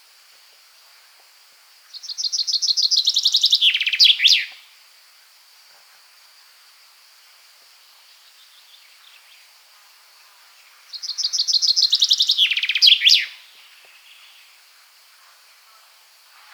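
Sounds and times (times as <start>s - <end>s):
common chaffinch Fringilla coelebs song: 1.9s - 4.6s, 10.6s - 14.6s.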